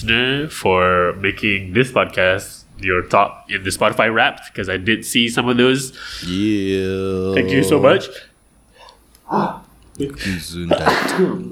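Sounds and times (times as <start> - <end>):
speech: 0.0 - 8.3, 9.3 - 11.5
person sneezing: 8.8 - 11.5.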